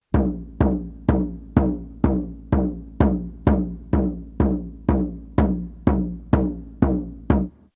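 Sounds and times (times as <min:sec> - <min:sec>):
shaman drum: 0:00.0 - 0:07.7.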